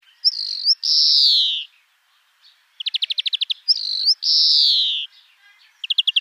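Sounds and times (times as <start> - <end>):
European greenfinch Chloris chloris rapid rattling trills: 0.1 - 1.7, 2.8 - 6.1.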